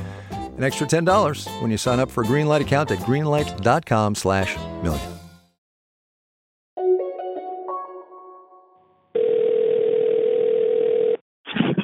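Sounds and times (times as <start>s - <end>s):
speech: 0.6s - 5.1s
telephone dial tone on picking up the phone: 9.2s - 11.2s.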